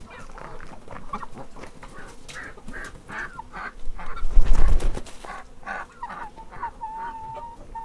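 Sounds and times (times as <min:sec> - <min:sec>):
pigeon flying by in a farmyard: 0:00.0 - 0:05.6.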